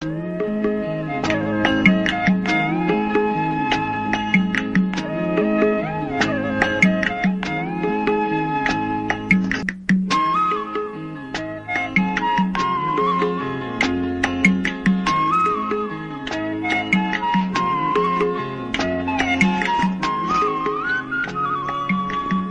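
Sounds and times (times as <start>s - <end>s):
flute background music: 0.0s - 22.4s.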